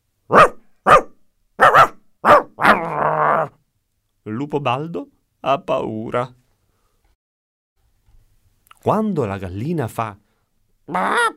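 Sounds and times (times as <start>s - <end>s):
dog barking: 0.3s - 2.9s
dog growling: 2.3s - 3.6s
speech: 4.4s - 6.4s, 8.8s - 10.2s, 10.9s - 11.3s.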